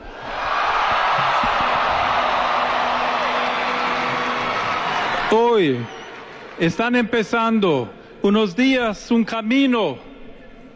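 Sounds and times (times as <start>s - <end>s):
large crowd of young people cheering and shouting: 0.0s - 6.7s
speech: 5.3s - 6.0s, 6.6s - 10.1s.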